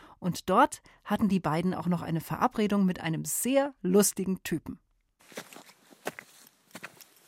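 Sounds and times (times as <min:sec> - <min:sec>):
speech: 0:00.2 - 0:05.6
footsteps of people walking into a moor in the early morning: 0:05.2 - 0:07.2.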